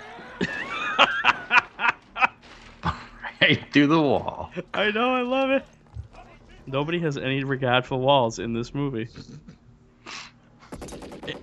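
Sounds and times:
laughter: 0:00.0 - 0:04.8, 0:11.2 - 0:11.4
speech: 0:03.5 - 0:05.8, 0:06.7 - 0:09.5
gunfire in a movie shootout: 0:10.7 - 0:11.4.

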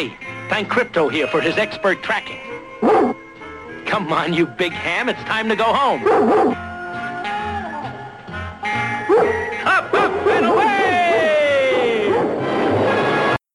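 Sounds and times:
speech: 0:00.0 - 0:03.1, 0:03.9 - 0:06.7
orchestral music: 0:00.0 - 0:11.6
cartoon dog barking and yelping: 0:02.8 - 0:03.2, 0:06.0 - 0:06.6, 0:09.1 - 0:12.4.

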